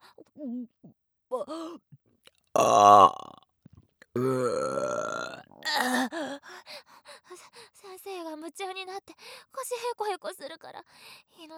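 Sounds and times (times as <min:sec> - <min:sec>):
speech: 0:00.4 - 0:03.4, 0:08.5 - 0:11.5
person burping: 0:02.6 - 0:03.4, 0:04.2 - 0:06.3.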